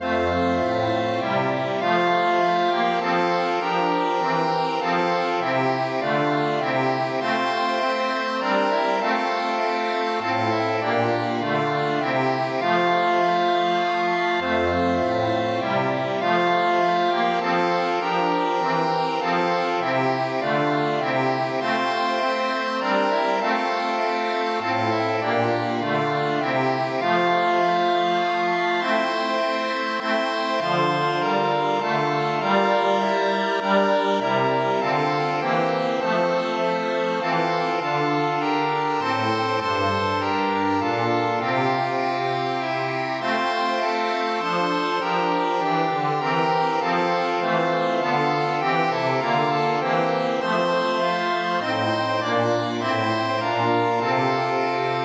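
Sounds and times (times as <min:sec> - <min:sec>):
hymns played on several instruments: 0:00.0 - 0:55.0.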